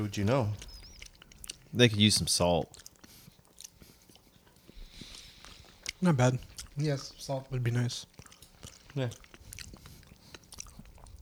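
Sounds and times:
speech: 0.0s - 0.7s, 1.7s - 2.8s, 6.0s - 8.2s, 9.0s - 9.3s
person munching and chewing food: 0.0s - 11.1s.

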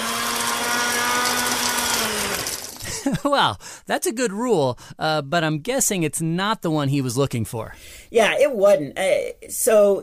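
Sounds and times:
blender running at full speed: 0.0s - 3.0s
speech: 3.0s - 10.0s.

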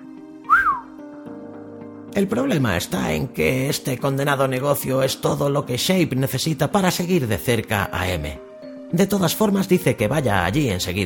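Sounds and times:
man whistling in surprise: 0.4s - 1.0s
speech: 2.2s - 11.0s.

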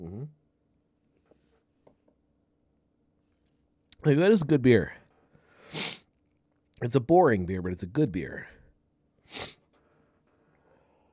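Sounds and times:
speech: 4.0s - 5.0s, 6.8s - 8.6s
person sniffling: 5.5s - 6.1s, 9.2s - 9.7s.

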